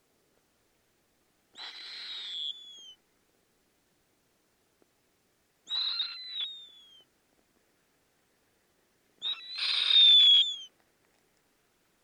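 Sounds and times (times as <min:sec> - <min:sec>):
Snowy owl giving rasping high-pitched screeches: 0:01.6 - 0:03.0, 0:05.7 - 0:07.1, 0:09.2 - 0:10.7.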